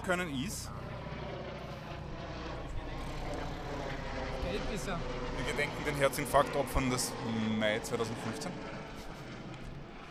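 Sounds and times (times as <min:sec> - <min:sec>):
speech: 0:00.0 - 0:00.9, 0:04.5 - 0:08.9
drone propellers buzzing while hovering overhead: 0:00.0 - 0:10.0.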